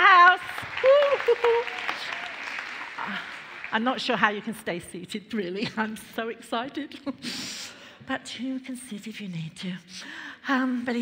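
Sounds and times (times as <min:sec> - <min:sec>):
crowd applauding: 0:00.0 - 0:04.4
person cheering: 0:00.8 - 0:03.3
speech: 0:03.7 - 0:10.9.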